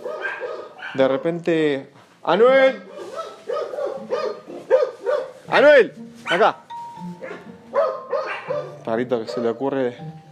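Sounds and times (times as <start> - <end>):
dog barking: 0.0 - 1.3, 2.9 - 5.5, 6.2 - 6.5, 7.2 - 9.7
speech: 0.9 - 2.9, 5.5 - 7.1, 8.9 - 10.2.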